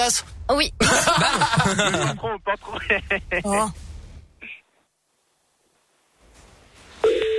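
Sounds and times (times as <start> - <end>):
speech: 0.0 - 3.8
faint noise: 0.0 - 7.3
laughter: 0.8 - 3.5
telephone ringing tone during a phone call: 7.0 - 7.3.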